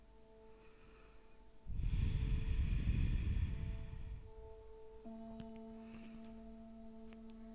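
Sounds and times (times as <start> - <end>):
faint sustained tone: 0.0 - 7.5
breathing in and out through the nose during a guided relaxation exercise: 0.5 - 4.7, 5.6 - 6.6.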